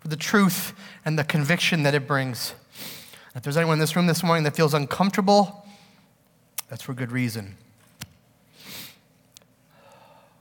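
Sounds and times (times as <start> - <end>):
speech: 0.1 - 5.7, 6.7 - 7.7
breathy sniff through the nose: 8.6 - 9.0.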